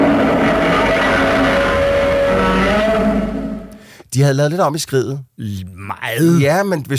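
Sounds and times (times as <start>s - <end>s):
movie monster roar with layered sounds: 0.0s - 3.7s
speech: 4.2s - 6.9s.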